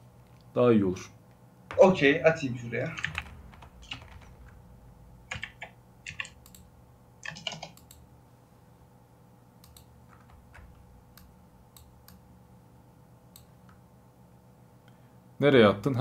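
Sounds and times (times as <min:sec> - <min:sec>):
speech: 0:00.6 - 0:01.2, 0:01.8 - 0:03.2, 0:15.4 - 0:16.0
fingers typing a question on a computer keyboard: 0:03.0 - 0:04.6, 0:05.3 - 0:08.0.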